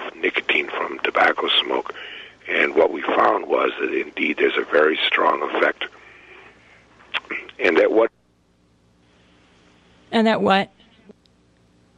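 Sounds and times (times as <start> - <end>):
voice over a phone line: 0.0 - 6.0, 7.2 - 8.1
speech: 2.8 - 5.8, 10.2 - 10.8.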